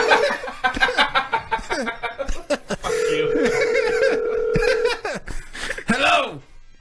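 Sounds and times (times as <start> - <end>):
laughter and chuckling: 0.0 - 5.9
steady phone tone: 2.9 - 5.0.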